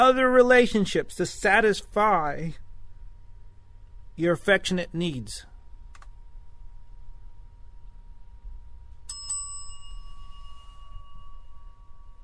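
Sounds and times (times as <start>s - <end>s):
speech: 0.0s - 2.6s, 4.2s - 5.5s
bright bicycle-style bell ringing: 9.1s - 12.2s.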